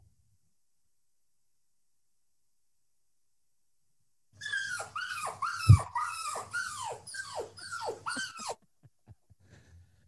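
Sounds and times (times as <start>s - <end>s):
small dog whimpering and yelping: 4.4s - 8.6s.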